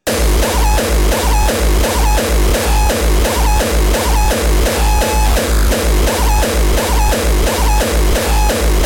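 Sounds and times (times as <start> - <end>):
distorted drum machine beat: 0.0 - 8.8.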